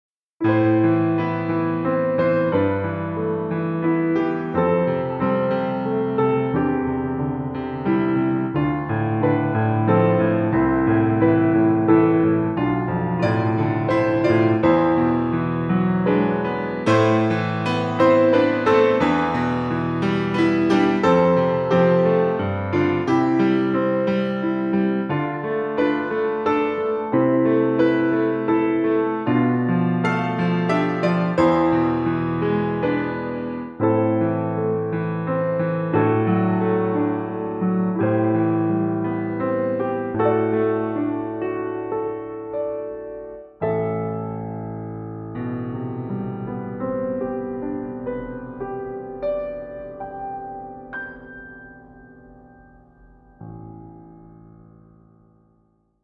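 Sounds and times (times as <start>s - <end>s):
concert grand piano: 0.4s - 56.0s.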